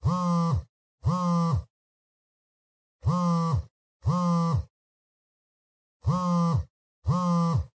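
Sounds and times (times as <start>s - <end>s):
cell phone vibrating on a cushion: 0.0s - 1.8s, 3.0s - 4.8s, 6.0s - 7.7s.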